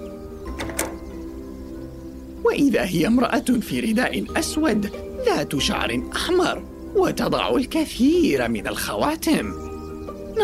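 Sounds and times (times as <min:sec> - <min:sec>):
door opening with rattling clunks: 0:00.5 - 0:01.4
speech: 0:02.5 - 0:09.6.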